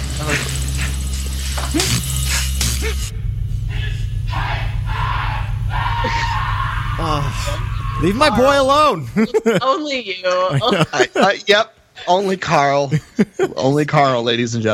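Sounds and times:
crashing noise: 0.0s - 8.1s
steady low rumble of a movie soundtrack: 0.0s - 9.5s
man screaming in anguish: 3.7s - 9.6s
laughter: 5.9s - 13.8s
speech: 8.0s - 14.7s.

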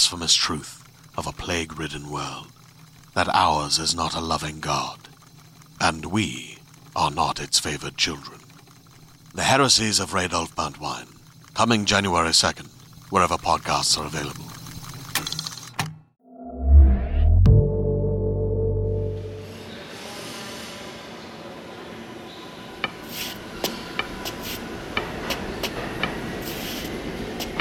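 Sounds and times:
speech: 0.0s - 2.6s, 3.2s - 5.2s, 5.8s - 8.4s, 9.3s - 14.6s
subway station noise: 17.5s - 27.5s
subway train rumbling as it pulls away from the station: 18.9s - 27.5s.

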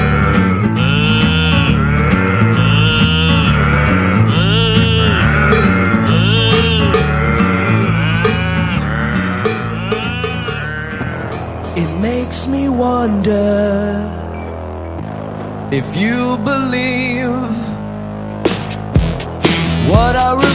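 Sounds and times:
cows mooing: 0.0s - 11.8s
steady low droning background: 0.0s - 20.4s
speech: 15.7s - 17.6s.

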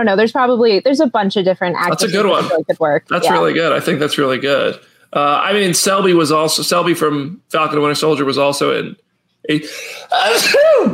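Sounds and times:
speech: 0.0s - 10.9s
person sneezing: 1.9s - 3.5s, 9.6s - 10.9s.

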